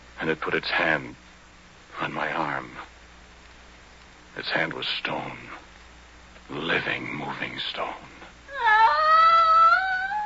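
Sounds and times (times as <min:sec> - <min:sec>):
speech: 0:00.2 - 0:01.2, 0:02.0 - 0:02.9, 0:04.4 - 0:05.6, 0:06.5 - 0:08.2
creature mewing: 0:08.5 - 0:10.2.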